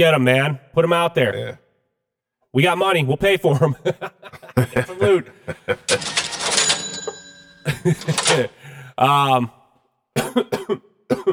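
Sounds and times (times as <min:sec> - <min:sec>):
speech: 0:00.0 - 0:01.6, 0:02.5 - 0:06.3, 0:07.8 - 0:09.6, 0:10.2 - 0:11.3
laughter: 0:03.5 - 0:08.9
person coughing harshly: 0:10.2 - 0:11.3.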